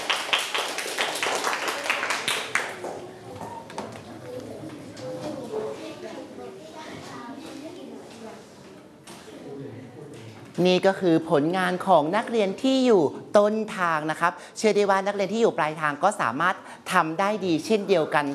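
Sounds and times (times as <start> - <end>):
students clapping for a classmate: 0.0 - 3.2
speech: 10.6 - 18.3.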